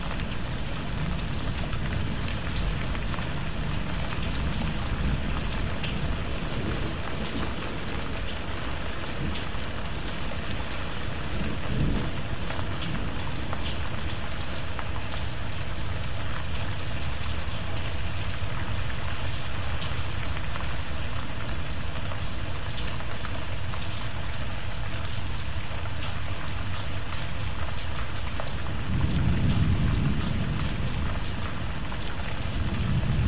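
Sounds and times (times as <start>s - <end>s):
rain falling densely with fine crackling drops: 0.0s - 33.2s
deep rumble of thunder: 0.4s - 14.1s, 28.7s - 33.2s.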